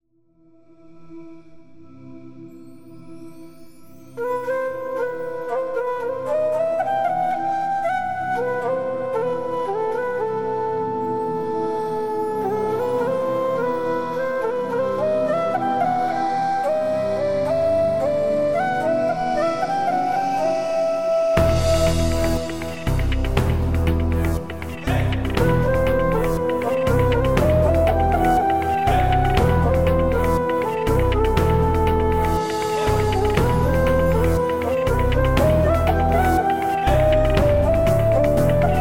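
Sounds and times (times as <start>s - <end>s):
Egyptian flute: 0.6s - 38.7s.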